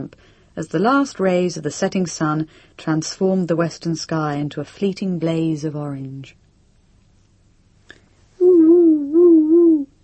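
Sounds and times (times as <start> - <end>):
speech: 0.0 - 6.4
barred owl giving a drawn-out wavering hoot: 8.4 - 10.0.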